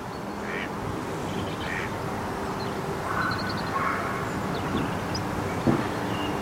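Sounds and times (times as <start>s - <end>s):
outdoor wind: 0.0s - 6.4s
ducks quacking: 0.4s - 0.7s, 1.6s - 1.9s.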